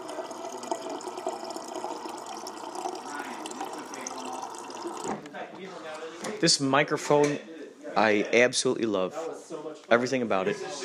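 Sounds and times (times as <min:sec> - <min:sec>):
water running in a restroom: 0:00.0 - 0:05.2
speech: 0:05.8 - 0:10.8.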